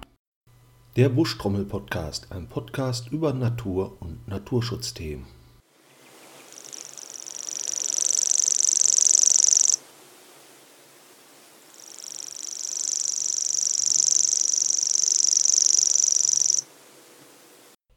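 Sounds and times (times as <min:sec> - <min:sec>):
speech: 0:01.0 - 0:05.4
common grasshopper warbler reeling song: 0:05.9 - 0:09.8, 0:11.7 - 0:16.7.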